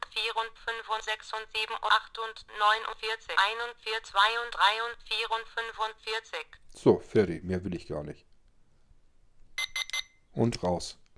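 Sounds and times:
speech: 0.2s - 8.3s, 10.4s - 11.0s
alarm clock sounding sharp high electronic beeps: 9.6s - 10.2s.

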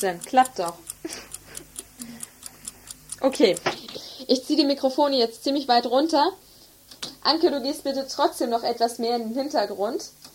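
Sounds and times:
speech: 0.0s - 1.3s, 3.2s - 6.4s, 7.2s - 10.2s
alarm clock ticking: 0.0s - 6.2s.

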